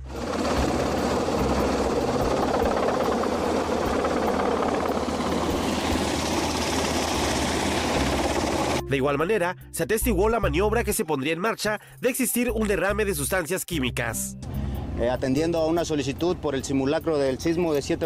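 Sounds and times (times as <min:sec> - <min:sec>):
army helicopter engine and rotor during medical emergency exercise: 0:00.0 - 0:08.8
speech: 0:08.9 - 0:18.0.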